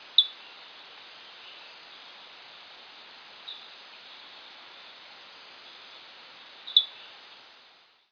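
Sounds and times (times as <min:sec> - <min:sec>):
Eleutherodactylidae Diasporus diastema calling: 0:00.1 - 0:02.4, 0:03.3 - 0:05.0, 0:05.6 - 0:07.3.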